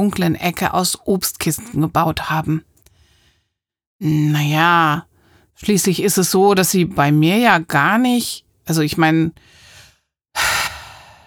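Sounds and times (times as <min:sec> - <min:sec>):
speech: 0:00.0 - 0:02.7, 0:04.0 - 0:09.6
deep inhalation: 0:09.4 - 0:11.2
breathy exhale-like hiss: 0:09.6 - 0:11.2.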